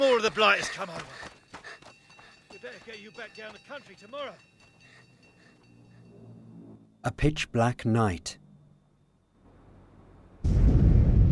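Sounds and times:
speech: 0:00.0 - 0:01.4, 0:02.6 - 0:04.5, 0:07.0 - 0:08.4
distant explosion during a wartime air raid over London: 0:10.4 - 0:11.3.

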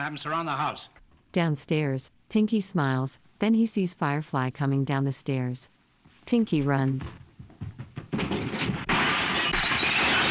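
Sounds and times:
speech: 0:00.0 - 0:07.2
mirror smashing with shattering glass and tinkling shards: 0:08.2 - 0:10.2.

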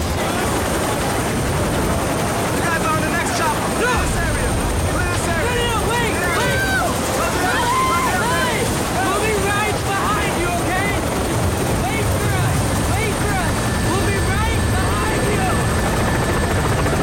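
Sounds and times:
helicopter taking off during a civilian evacuation: 0:00.0 - 0:17.0.

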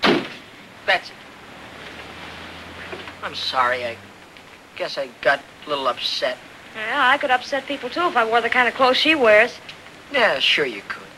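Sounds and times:
car door slamming shut: 0:00.0 - 0:00.4
speech: 0:00.9 - 0:01.2, 0:03.2 - 0:04.1, 0:04.8 - 0:11.0.

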